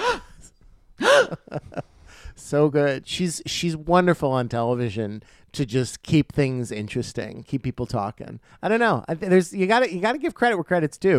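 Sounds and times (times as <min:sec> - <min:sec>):
dramatic gasp: 0:00.0 - 0:02.4
speech: 0:02.5 - 0:11.1.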